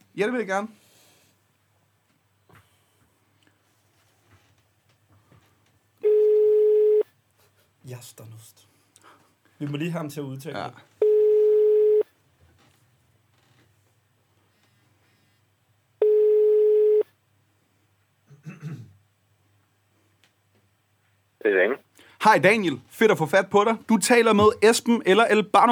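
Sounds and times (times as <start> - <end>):
speech: 0.2 - 0.8, 7.9 - 8.7, 9.6 - 11.0, 21.4 - 25.7
telephone ringback tone on an outgoing phone call: 6.0 - 7.0, 11.0 - 12.0, 16.0 - 17.0.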